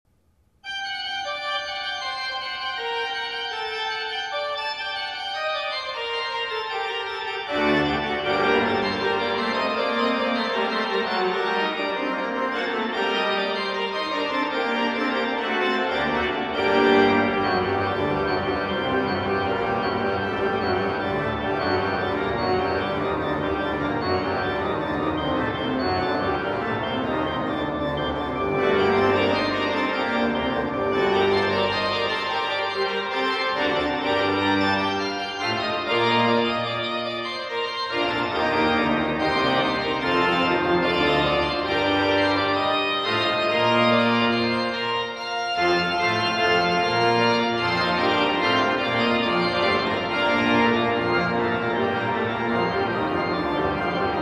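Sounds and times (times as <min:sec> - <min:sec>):
organ prelude in E minor: 0:00.6 - 0:54.1.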